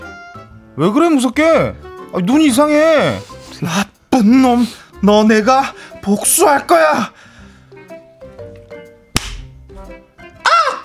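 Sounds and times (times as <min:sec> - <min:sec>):
soft melodic music: 0:00.0 - 0:10.8
speech: 0:00.8 - 0:07.2
slap on the cheek: 0:09.1 - 0:09.6.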